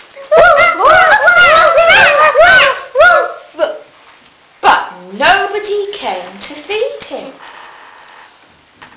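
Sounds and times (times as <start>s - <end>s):
children imitating a sheepdog barking: 0.2s - 3.9s.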